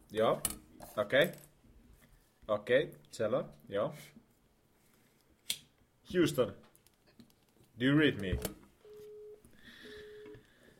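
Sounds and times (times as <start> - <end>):
speech: 0.1 - 1.5, 2.5 - 4.2, 6.1 - 6.7, 7.8 - 8.6
telephone busy signal: 8.9 - 10.4.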